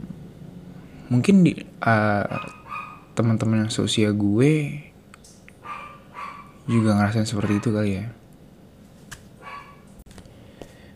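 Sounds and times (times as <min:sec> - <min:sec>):
speech: 0:01.1 - 0:02.6, 0:03.2 - 0:04.9, 0:06.7 - 0:08.2
neighbor's dog barking: 0:02.3 - 0:03.2, 0:05.6 - 0:07.9, 0:09.4 - 0:09.9.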